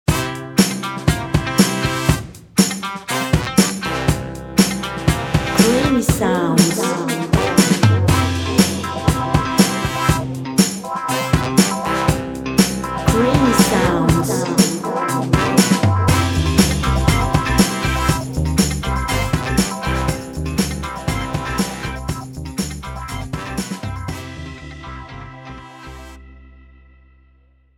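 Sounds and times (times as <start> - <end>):
happy Motown music: 0.1 - 26.2.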